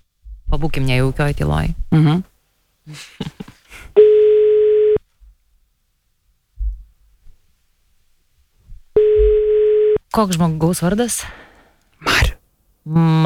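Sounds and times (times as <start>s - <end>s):
speech: 0.6s - 2.3s, 2.9s - 3.4s, 10.1s - 11.4s, 12.8s - 13.2s
telephone line tone while placing a call: 4.0s - 5.0s, 9.0s - 10.0s.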